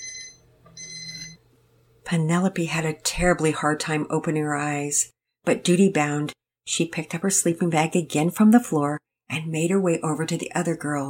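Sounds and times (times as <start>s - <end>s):
little alarm clock dinging: 0.0s - 1.4s
speech: 2.1s - 11.0s.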